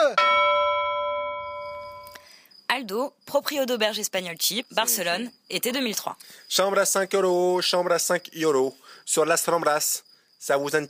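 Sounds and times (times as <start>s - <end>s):
single loud bell strike ringing: 0.1s - 2.2s
speech: 2.8s - 10.8s.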